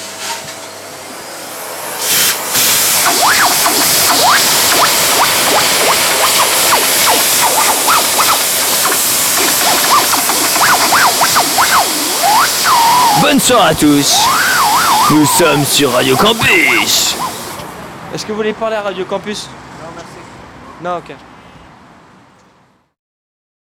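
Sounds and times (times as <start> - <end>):
vacuum cleaner running inside a fireplace chimney flue during housecleaning: 0.0 - 17.8
speech: 13.2 - 17.1, 18.2 - 19.7, 20.8 - 21.3.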